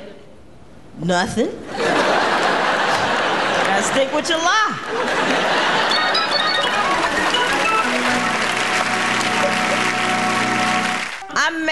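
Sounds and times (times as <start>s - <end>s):
speech: 1.0s - 2.2s, 3.8s - 6.0s, 11.4s - 11.6s
laughter: 1.7s - 10.5s
crowd applauding for a speaker: 5.2s - 11.3s.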